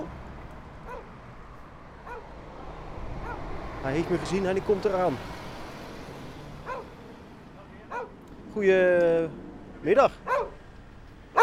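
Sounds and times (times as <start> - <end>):
steady outdoor noise: 0.0 - 11.4
shepherd dog barking: 0.8 - 1.1, 2.0 - 2.3, 3.2 - 3.4, 6.6 - 6.9, 7.9 - 8.2, 10.2 - 10.6
shepherd dog yipping: 0.8 - 1.1, 2.0 - 2.3, 3.2 - 3.5, 6.6 - 6.9, 7.9 - 8.2, 10.3 - 10.6
speech: 3.8 - 5.4, 8.6 - 10.3.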